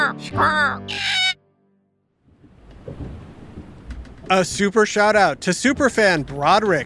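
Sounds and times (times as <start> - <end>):
speech: 0.1 - 1.0, 4.3 - 6.8
parrot squawking: 0.9 - 1.4
low rumbling wash of noise: 2.2 - 6.8.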